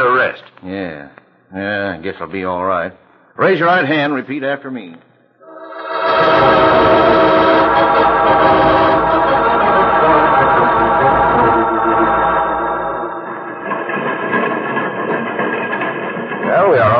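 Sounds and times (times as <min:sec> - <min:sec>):
speech: 0:00.0 - 0:05.1
loud train whistle blowing: 0:05.4 - 0:13.6
train running: 0:05.4 - 0:16.9.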